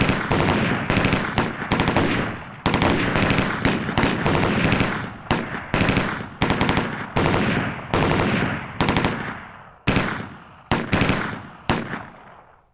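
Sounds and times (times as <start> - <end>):
gunfire: 0.0 - 12.6.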